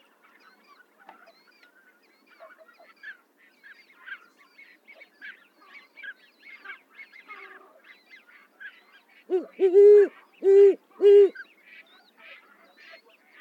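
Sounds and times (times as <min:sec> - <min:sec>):
owl giving loud low hoots: 0:09.3 - 0:11.4.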